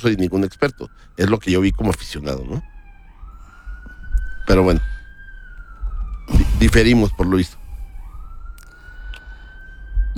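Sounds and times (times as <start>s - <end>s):
speech: 0.0s - 2.7s, 4.5s - 5.0s, 6.3s - 7.6s
ambulance siren: 0.0s - 10.1s
low rumble of traffic noise: 0.0s - 10.1s.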